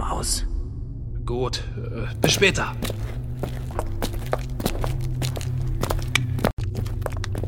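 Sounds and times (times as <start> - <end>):
speech: 0.2 - 0.5, 1.3 - 3.9
footsteps of a person walking along a corridor with a hard floor: 2.3 - 7.4.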